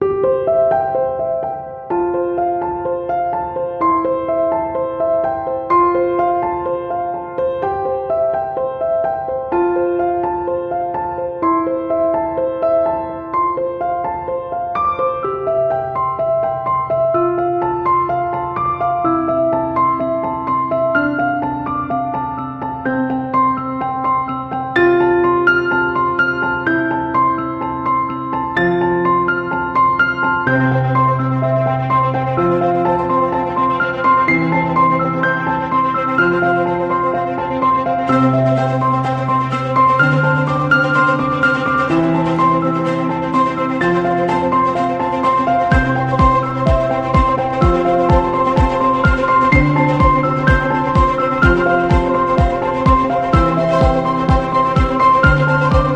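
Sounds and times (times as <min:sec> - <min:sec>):
piano: 0:00.0 - 0:55.9
inspiring rising orchestral music: 0:30.8 - 0:55.9.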